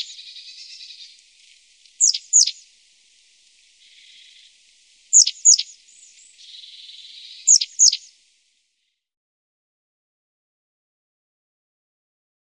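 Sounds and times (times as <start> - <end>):
long-tailed tit calls: 0.0 - 1.2, 2.0 - 2.6, 5.1 - 8.1.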